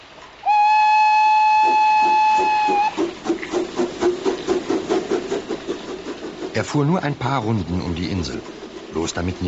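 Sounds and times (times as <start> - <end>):
steam locomotive chugging away: 0.1 - 9.4
steam locomotive whistle: 0.4 - 3.2
speech: 6.6 - 9.4.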